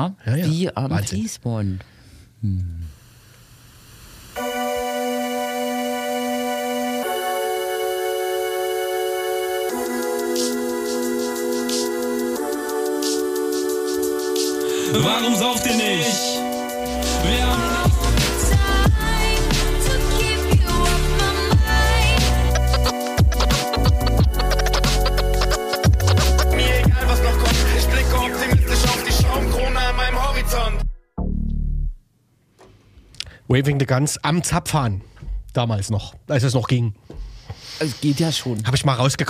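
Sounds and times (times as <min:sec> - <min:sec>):
speech: 0:00.0 - 0:03.0, 0:14.9 - 0:16.3, 0:33.5 - 0:39.2
sustained synth chords: 0:04.4 - 0:32.0
heavy bass and drums: 0:16.9 - 0:30.0.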